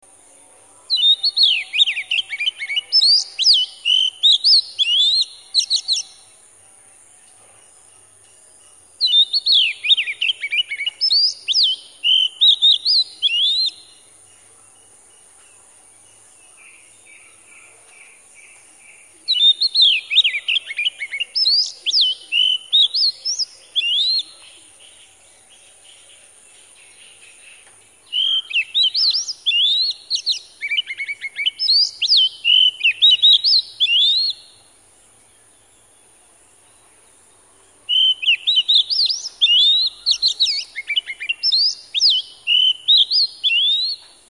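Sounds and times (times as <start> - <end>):
Oriental magpie robin: 0.9 - 6.4, 8.9 - 14.0, 18.9 - 24.5, 26.6 - 34.6, 37.8 - 44.2.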